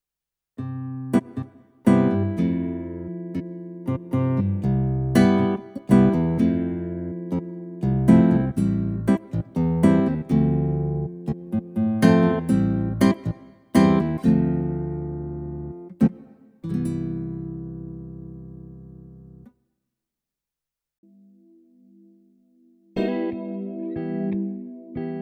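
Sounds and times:
guitar sampled on an S950: 0:00.6 - 0:19.6, 0:21.0 - 0:25.2.

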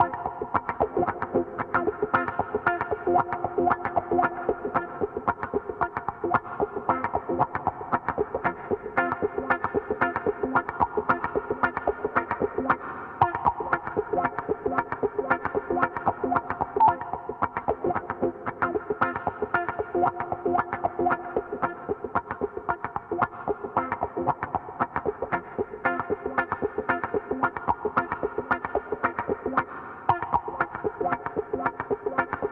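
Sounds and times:
wet electric guitar through compressor: 0:00.0 - 0:32.4.

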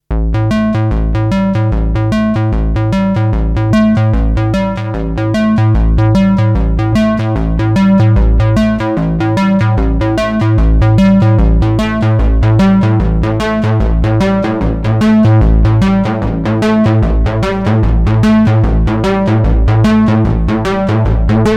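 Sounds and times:
synthesizer pulse-width modulated wave through band pass filter with formant envelope: 0:00.3 - 0:21.5.

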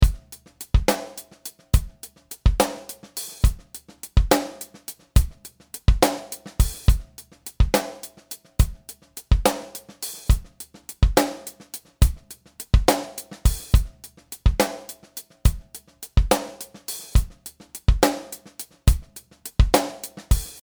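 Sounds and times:
dry drum: 0:00.0 - 0:20.6.

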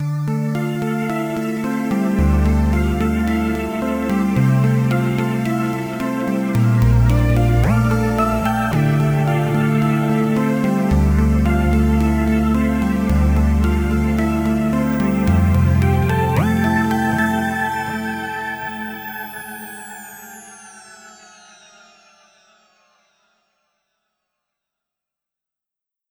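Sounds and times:
Groove Synthesis 3rd soft WT synth arpeggio: 0:00.0 - 0:20.0.

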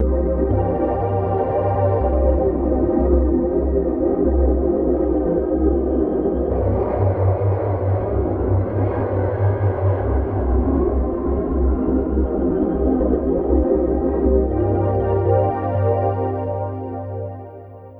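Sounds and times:
animated quartet chorus ensemble BBD effect: 0:00.0 - 0:17.9.

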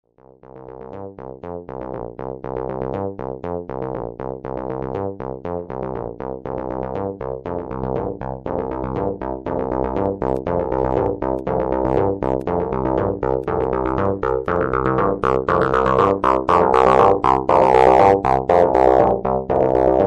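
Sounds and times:
bass with delay and EQ effects: 0:00.1 - 0:20.0.

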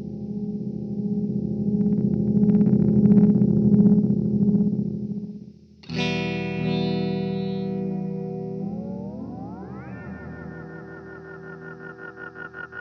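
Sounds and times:
delay oscillation effect: 0:00.3 - 0:05.4, 0:06.3 - 0:12.7.

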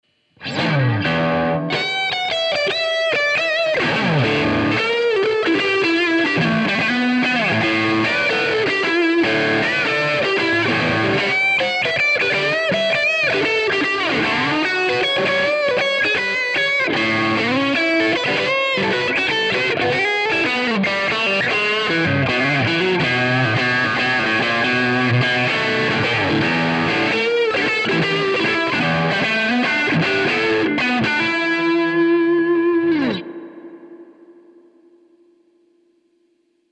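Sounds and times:
overdriven blues guitar through a boosted combo amplifier: 0:00.4 - 0:35.4.

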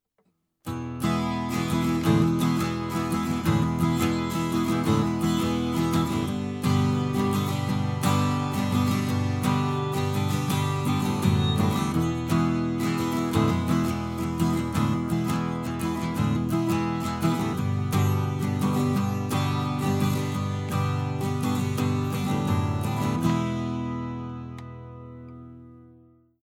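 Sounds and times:
guitar through a preamp: 0:00.2 - 0:26.4.

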